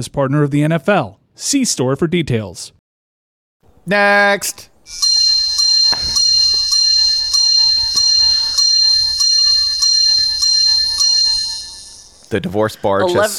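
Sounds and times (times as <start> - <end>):
speech: 0.0 - 2.8, 3.8 - 5.2, 12.3 - 13.3
clock striking bright ringing chimes: 5.0 - 12.3.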